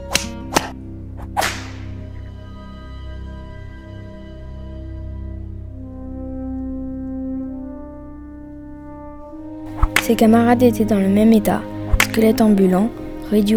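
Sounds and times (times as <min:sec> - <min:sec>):
low sustained droning music bed: 0:00.0 - 0:13.5
whip cracks: 0:01.4 - 0:01.8
speech: 0:10.1 - 0:13.5.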